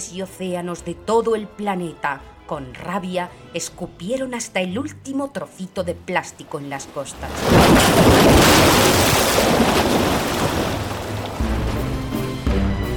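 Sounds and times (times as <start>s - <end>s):
speech: 0.0s - 9.6s
crashing ocean waves from a tsunami: 6.4s - 12.8s.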